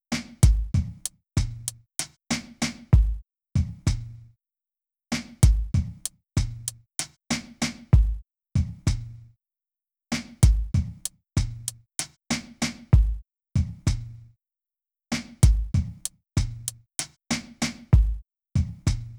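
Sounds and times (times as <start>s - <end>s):
drum beat: 0.4s - 1.7s, 2.3s - 4.1s, 5.4s - 6.7s, 7.6s - 9.1s, 10.4s - 12.1s, 13.0s - 14.1s, 15.4s - 16.7s, 17.3s - 19.1s.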